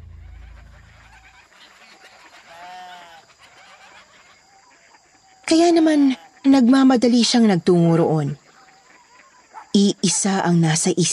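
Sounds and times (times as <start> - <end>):
low rumble: 0.0 - 1.5
chickens clucking in a coop: 0.0 - 10.5
speech: 5.5 - 8.4, 9.8 - 11.1.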